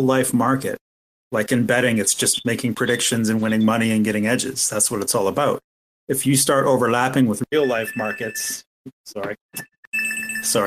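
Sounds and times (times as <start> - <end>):
speech: 0.0 - 9.7, 10.4 - 10.6
phone with short electronic ringing tones: 7.6 - 8.6, 9.9 - 10.6.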